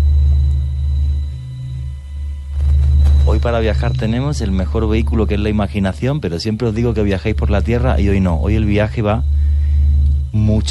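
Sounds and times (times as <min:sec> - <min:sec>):
sonified sound of the Sun, deep low droning rumble: 0:00.0 - 0:10.6
speech: 0:03.4 - 0:09.4, 0:10.3 - 0:10.6.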